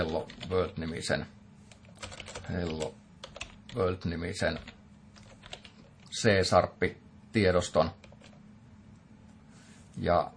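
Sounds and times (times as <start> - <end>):
typing code on a computer keyboard in a text editor: 0.0 - 0.9, 1.7 - 3.8, 4.5 - 6.1, 8.0 - 8.4
speech: 0.0 - 1.4, 2.0 - 3.0, 3.7 - 4.8, 6.1 - 8.0, 10.0 - 10.3.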